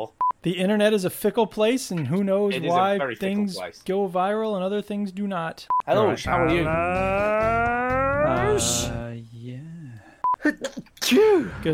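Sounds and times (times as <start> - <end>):
speech: 0.0 - 9.3, 10.4 - 11.7
person sneezing: 10.4 - 11.6.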